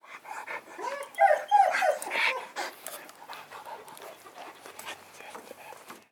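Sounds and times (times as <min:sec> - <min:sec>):
dog whimpering: 0:00.8 - 0:02.6.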